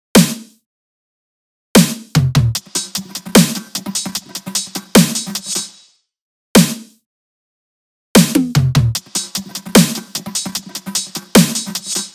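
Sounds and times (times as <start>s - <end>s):
drum top loops: 2.2s - 5.8s, 8.2s - 12.1s.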